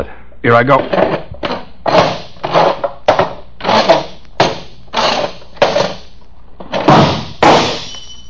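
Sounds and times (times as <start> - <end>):
chair dragged across the floor in short jerks: 0.7 - 7.2
drinking glass shattering with a bright ringing tail: 7.4 - 8.2.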